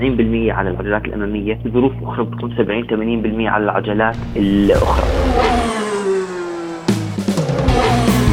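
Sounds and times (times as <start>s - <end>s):
speech: 0.0s - 5.8s
car engine revving loudly: 4.1s - 8.3s
gear changes: 4.1s - 8.3s.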